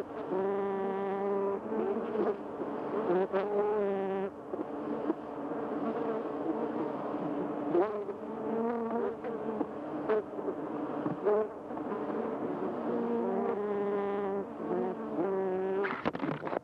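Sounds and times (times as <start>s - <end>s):
bee buzzing: 0.0s - 16.5s.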